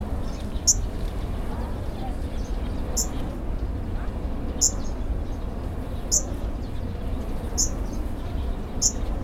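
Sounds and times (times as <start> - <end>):
arctic warbler Phylloscopus borealis: 0.0 - 9.2.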